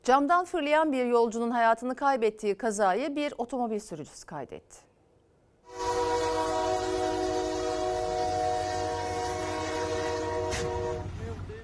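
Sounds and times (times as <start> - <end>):
speech: 0.0 - 4.9
freight train horn blaring at a level crossing: 5.6 - 11.6
low rumbling rail noise of freight train: 5.7 - 11.6.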